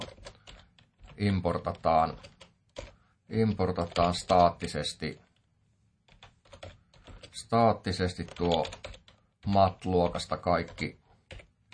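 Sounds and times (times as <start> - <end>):
typing code on a computer keyboard: 0.0 - 4.7, 6.1 - 7.4, 8.0 - 11.7
speech: 1.2 - 2.4, 3.3 - 5.2, 7.5 - 11.0.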